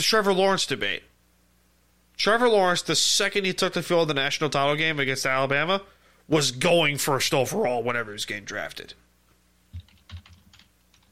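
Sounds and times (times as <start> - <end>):
speech: 0.0 - 1.1, 2.2 - 9.0
computer keyboard typing: 9.7 - 11.1.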